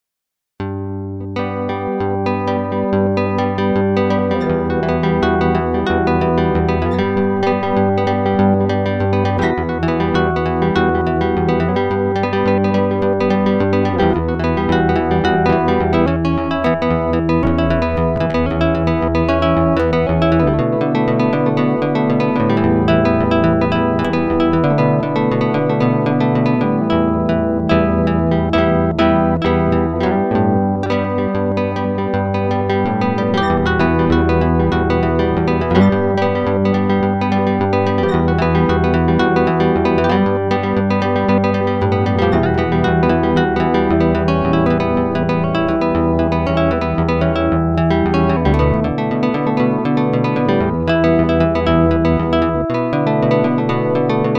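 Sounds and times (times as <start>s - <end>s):
guitar: 0.6s - 54.3s.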